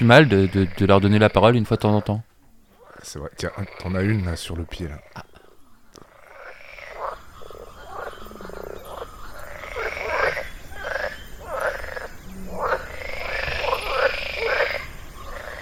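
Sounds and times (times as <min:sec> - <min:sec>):
speech: 0:00.0 - 0:02.3, 0:03.0 - 0:05.3
chorus of frogs croaking: 0:00.0 - 0:15.6
constant hum: 0:00.0 - 0:15.6.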